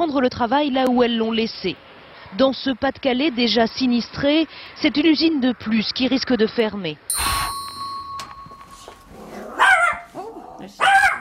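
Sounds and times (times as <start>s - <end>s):
speech: 0.0s - 7.6s
faint steady hum: 7.1s - 10.6s
dog growling: 9.1s - 10.7s
dog giving loud gruff barks: 9.2s - 11.2s.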